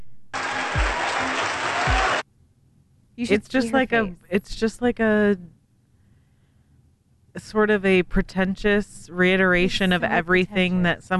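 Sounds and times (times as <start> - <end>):
audience applause: 0.4 - 2.2
speech: 3.2 - 5.6, 7.4 - 11.1.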